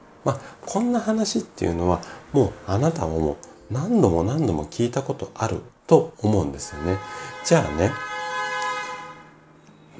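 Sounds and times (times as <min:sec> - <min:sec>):
speech: 0:00.2 - 0:08.1
car horn honking: 0:06.4 - 0:09.4.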